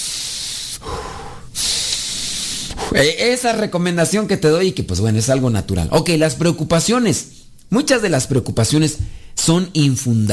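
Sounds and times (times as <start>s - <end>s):
deep airy breathing as a relaxation exercise: 0.0s - 3.1s, 9.0s - 9.4s
speech: 2.9s - 10.3s.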